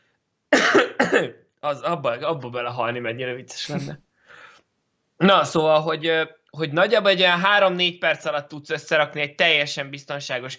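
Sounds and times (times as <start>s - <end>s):
person coughing after choking on saliva: 0.6s - 1.3s, 3.7s - 4.0s
speech: 1.0s - 4.1s, 5.2s - 10.5s.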